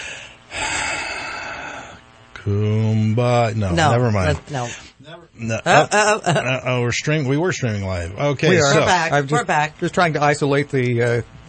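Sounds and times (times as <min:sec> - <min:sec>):
deep breath inhale: 0:00.0 - 0:02.1
speech: 0:02.4 - 0:11.4.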